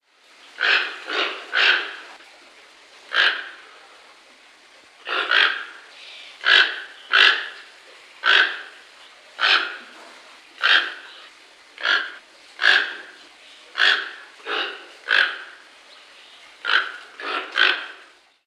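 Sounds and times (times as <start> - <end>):
toco toucan Ramphastos toco calls: 0.6 - 2.2, 5.1 - 8.8, 9.4 - 9.9, 10.6 - 15.6.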